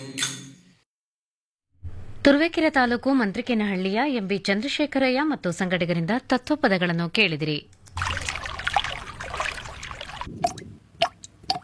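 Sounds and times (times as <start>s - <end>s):
speech: 2.2s - 8.1s
water dripping from a leaking tap: 7.8s - 11.6s.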